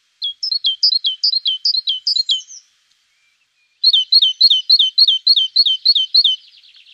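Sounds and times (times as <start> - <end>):
great tit calling: 0.2 - 2.6, 3.8 - 6.9.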